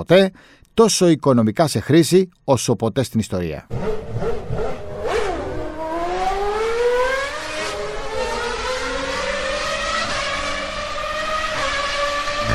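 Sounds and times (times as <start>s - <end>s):
speech: 0.0s - 4.2s
race car engine accelerating from the start line: 3.7s - 12.5s.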